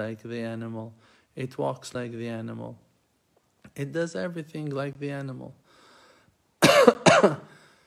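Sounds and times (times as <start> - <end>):
speech: 0.0 - 2.9, 3.7 - 5.6, 6.8 - 7.6
person coughing: 6.6 - 7.7.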